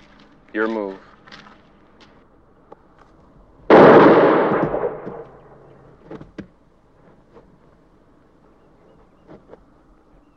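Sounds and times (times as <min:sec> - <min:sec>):
speech: 0:00.5 - 0:01.1
single gunshot in a film scene: 0:03.7 - 0:05.6.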